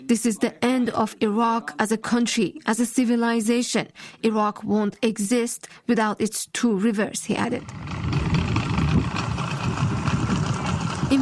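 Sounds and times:
speech: 0:00.1 - 0:08.3
motorboat engine on a boat moving through Iraq's marshes: 0:07.5 - 0:11.2.

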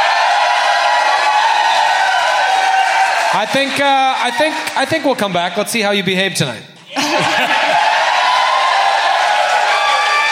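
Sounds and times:
live audience cheering: 0:00.0 - 0:05.2, 0:06.8 - 0:10.3
speech: 0:03.3 - 0:06.7
laughter: 0:06.9 - 0:08.2.

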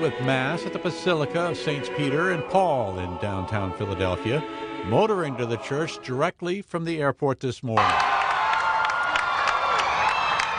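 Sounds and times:
speech: 0:00.0 - 0:08.1
crowd cheering as a motorcade arrives: 0:07.8 - 0:10.5
shrill whoops and shouts from a crowd: 0:07.8 - 0:10.5.

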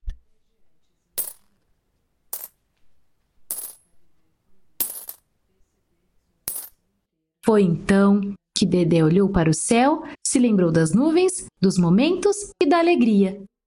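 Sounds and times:
coins clinking and dropping: 0:01.2 - 0:01.7, 0:02.3 - 0:02.7, 0:03.4 - 0:04.0, 0:04.8 - 0:05.3, 0:06.5 - 0:06.8
speech: 0:07.4 - 0:13.5.

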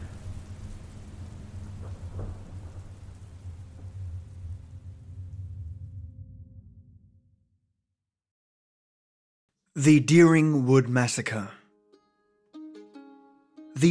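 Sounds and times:
steady rain pouring down: 0:00.0 - 0:06.2
deep rolling rumble of thunder: 0:00.0 - 0:07.6
speech: 0:09.8 - 0:11.6.

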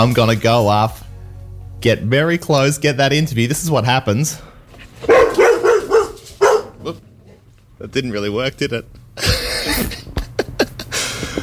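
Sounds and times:
speech: 0:00.0 - 0:01.0, 0:01.8 - 0:05.2, 0:07.8 - 0:10.0
dog barking territorially from its bed on a porch: 0:05.0 - 0:07.0.

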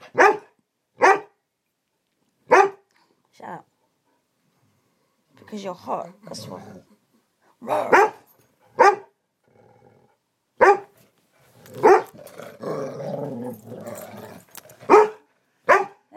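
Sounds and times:
female dog barking: 0:00.0 - 0:01.4, 0:02.5 - 0:02.9, 0:07.6 - 0:09.2, 0:10.6 - 0:11.0, 0:11.8 - 0:12.2, 0:14.8 - 0:16.1
speech: 0:03.4 - 0:03.7, 0:05.5 - 0:07.0, 0:07.6 - 0:08.1
dog growling: 0:06.0 - 0:07.0, 0:09.4 - 0:10.2, 0:11.5 - 0:14.9.

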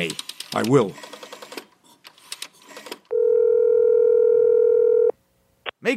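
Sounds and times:
speech: 0:00.0 - 0:01.1
telephone number dialing clicks and tones: 0:02.8 - 0:05.1
steady telephone dial tone: 0:03.1 - 0:05.1.

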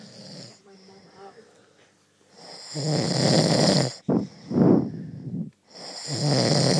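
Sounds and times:
loud rasping snoring: 0:00.0 - 0:00.6, 0:02.4 - 0:05.0, 0:05.8 - 0:06.7.

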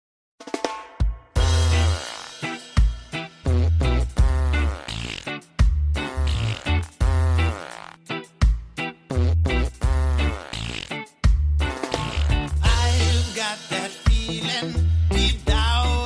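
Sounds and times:
steady thumping bass beat: 0:01.0 - 0:07.5, 0:08.4 - 0:16.0
fart sound effects played by a voice-assistant skill: 0:01.4 - 0:02.6, 0:03.4 - 0:05.4, 0:06.0 - 0:08.1, 0:09.1 - 0:11.0, 0:11.6 - 0:12.7.

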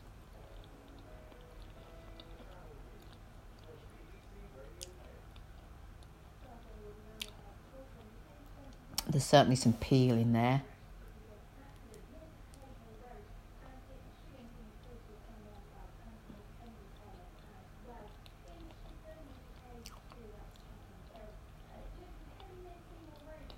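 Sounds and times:
low hum: 0:00.0 - 0:23.5
person chewing a pastry: 0:00.4 - 0:06.2, 0:17.1 - 0:21.6
speech: 0:09.2 - 0:10.7.

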